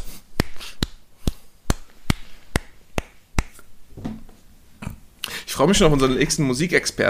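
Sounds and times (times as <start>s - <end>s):
hands clapping a steady four-four beat: 0.3s - 3.6s
speech: 5.6s - 7.0s.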